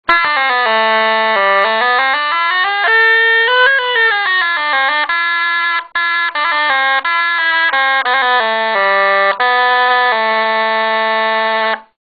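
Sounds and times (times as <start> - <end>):
salmaj baritone bagpipes in G: 0.1 - 11.9.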